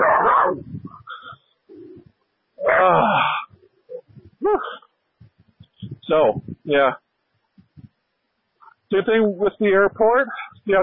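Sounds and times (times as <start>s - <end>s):
dogs barking: 0.0s - 1.2s
dogs yelping whines: 0.0s - 2.0s, 2.6s - 3.0s
speech: 6.1s - 7.0s, 8.9s - 10.8s.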